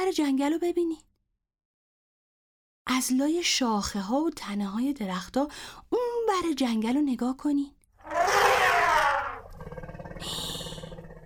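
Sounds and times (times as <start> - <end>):
speech: 0.1 - 1.1, 2.9 - 8.5, 10.2 - 10.6
elephant trumpeting in a jungle: 8.0 - 11.1
low rumbling growl: 8.1 - 11.2.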